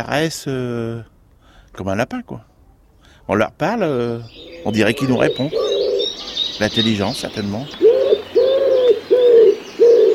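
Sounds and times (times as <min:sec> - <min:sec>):
speech: 0:00.0 - 0:01.1, 0:01.8 - 0:02.5, 0:03.3 - 0:05.7, 0:06.6 - 0:07.8
pigeons cooing: 0:04.0 - 0:10.1.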